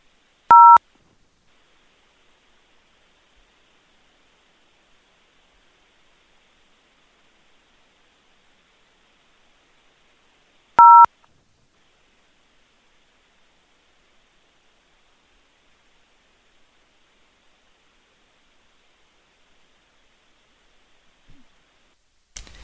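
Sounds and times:
telephone keypad tones dialing an extension into an automated company phone line: 0:00.5 - 0:00.8, 0:10.8 - 0:11.1.

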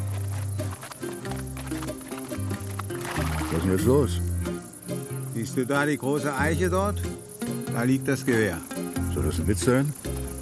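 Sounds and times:
horse hooves clip-clopping as a horse is ridden: 0:00.0 - 0:04.6
speech: 0:03.5 - 0:04.3, 0:05.4 - 0:07.2, 0:07.8 - 0:10.0.

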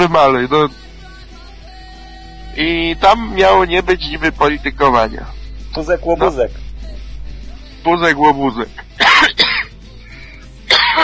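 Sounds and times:
speech: 0:00.0 - 0:00.8, 0:02.6 - 0:06.6, 0:07.8 - 0:09.4
person coughing with throat clearing: 0:09.0 - 0:09.8, 0:10.7 - 0:11.0.

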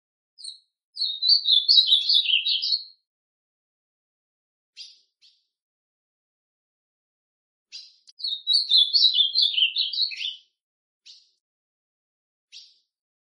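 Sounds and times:
ultramarine grosbeak song: 0:00.4 - 0:03.0, 0:04.8 - 0:05.5, 0:07.7 - 0:11.4, 0:12.5 - 0:12.9.

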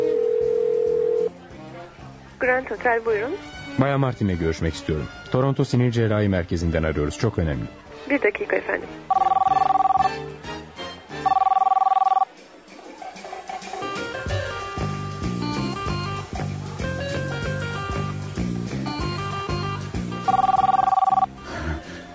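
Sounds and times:
telephone ringing in a radio drama scene: 0:00.0 - 0:01.3, 0:09.1 - 0:10.2, 0:11.2 - 0:12.3, 0:20.3 - 0:21.3
busy sound: 0:00.0 - 0:22.1
speech: 0:02.4 - 0:09.2.

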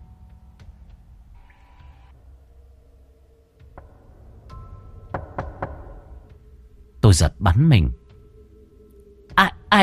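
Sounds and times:
dry knocking on a door: 0:05.0 - 0:06.4
speech: 0:07.1 - 0:08.0.

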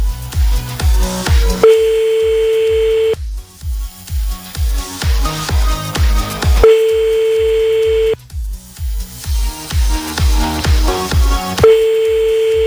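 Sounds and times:
loud rhythmic pulsing music: 0:00.0 - 0:12.6
telephone ringback tones of an unanswered call: 0:01.7 - 0:03.2, 0:06.6 - 0:08.2.

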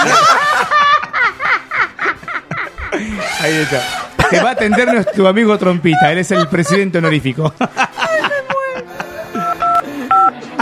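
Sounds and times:
laughter: 0:00.0 - 0:10.5
speech: 0:03.4 - 0:07.9
telephone keypad tones as a number is dialed: 0:09.4 - 0:10.3.

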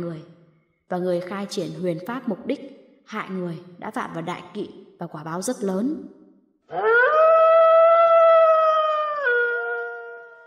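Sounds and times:
speech: 0:00.0 - 0:07.2
dog howling: 0:06.7 - 0:10.4.

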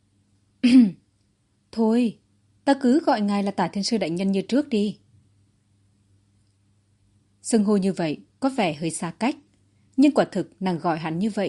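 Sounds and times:
woman coughing: 0:00.6 - 0:01.0
speech: 0:01.8 - 0:05.0, 0:07.4 - 0:09.4, 0:10.0 - 0:11.4.

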